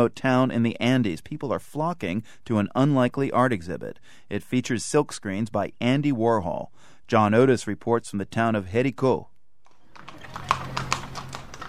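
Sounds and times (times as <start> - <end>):
speech: 0.0 - 9.3
horse hooves clip-clopping on a town street in a farming community in the Colombian Andes: 9.7 - 11.6.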